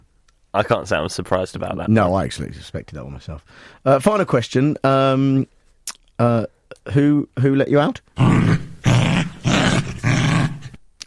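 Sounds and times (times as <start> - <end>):
speech: 0.5 - 5.6, 6.2 - 8.6
dog growl sound effect: 8.2 - 10.8.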